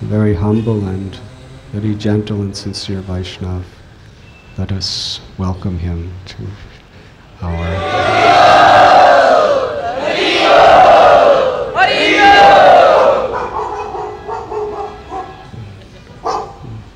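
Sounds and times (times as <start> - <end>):
speech: 0.0 - 3.8, 4.6 - 6.7, 7.4 - 8.7
crowd murmuring: 7.4 - 16.9
dog barking in howling cries and yelps: 13.0 - 15.4, 16.2 - 16.7.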